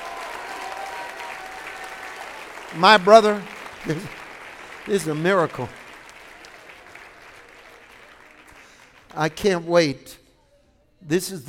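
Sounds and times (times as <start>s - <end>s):
audience clapping: 0.0s - 9.8s
speech: 2.7s - 4.2s, 4.8s - 5.8s, 9.2s - 10.2s, 11.0s - 11.4s.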